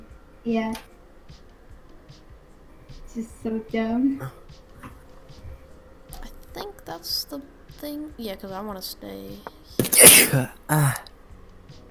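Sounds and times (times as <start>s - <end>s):
speech: 0.4s - 1.4s, 3.2s - 4.4s, 6.9s - 11.1s
sharp sneeze: 9.8s - 11.0s
short voiced sound: 9.8s - 11.0s.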